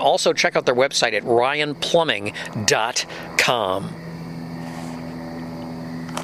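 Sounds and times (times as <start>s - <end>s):
speech: 0.0s - 4.0s
helicopter engine droning overhead: 0.0s - 6.2s.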